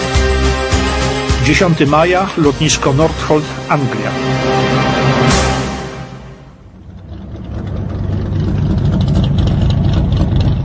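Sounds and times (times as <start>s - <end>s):
road noise: 0.1s - 10.6s
speech: 1.5s - 4.7s
car engine rumbling while driving up and stopping: 6.3s - 10.6s.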